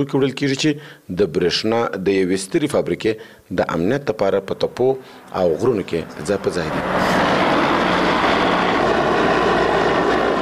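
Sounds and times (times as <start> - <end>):
speech: 0.0 - 7.2
Black Hawk helicopter of the Afghan Air Force flying: 5.2 - 10.4.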